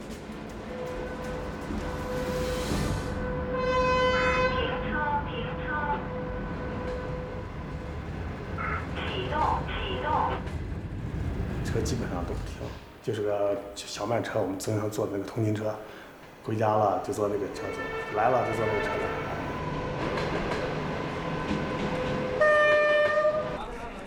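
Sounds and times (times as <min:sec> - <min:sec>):
passenger train rumbling past a station: 0:00.0 - 0:24.0
passenger train horn blaring: 0:00.5 - 0:10.4, 0:17.4 - 0:23.7
speech: 0:13.0 - 0:19.3.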